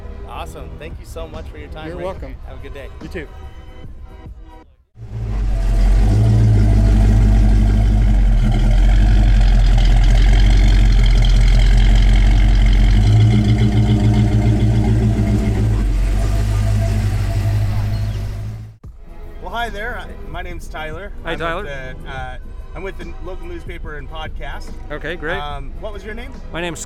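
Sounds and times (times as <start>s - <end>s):
speech: 0.4s - 3.6s, 19.7s - 26.8s
car engines idling at a drive-through car show: 5.0s - 18.8s.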